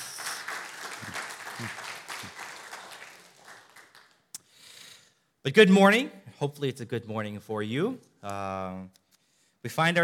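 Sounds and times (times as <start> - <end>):
audience applauding to welcome a guest: 0.0 - 4.3
speech: 5.4 - 9.0, 9.6 - 10.0.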